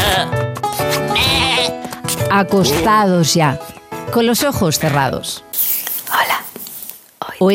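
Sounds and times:
sheep bleating: 0.0s - 1.8s
speech: 2.3s - 5.5s.

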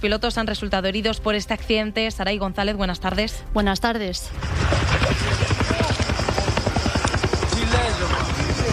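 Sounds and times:
speech: 0.0s - 5.9s
helicopter rotor noise with blade chop and engine whine during firefighting: 4.3s - 8.7s.

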